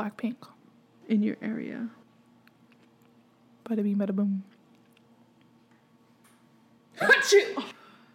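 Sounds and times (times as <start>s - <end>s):
speech: 0.0s - 0.5s, 1.1s - 2.0s, 3.7s - 4.5s, 7.0s - 7.8s
faint hum: 0.0s - 8.1s
sneeze: 7.0s - 7.8s.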